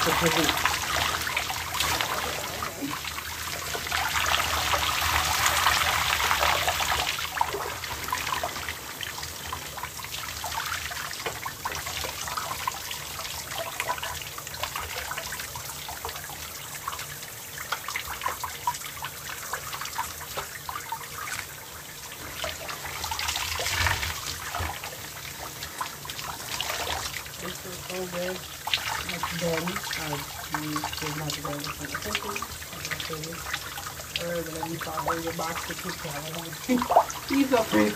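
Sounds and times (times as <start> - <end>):
speech: 0.0 - 0.8
water running while something is rinsed off: 0.0 - 37.9.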